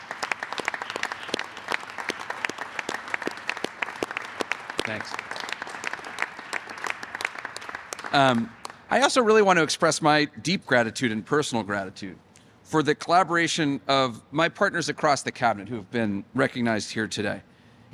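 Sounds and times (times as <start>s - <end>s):
room full of people applauding: 0.0s - 8.9s
speech: 4.9s - 5.2s, 8.1s - 17.9s.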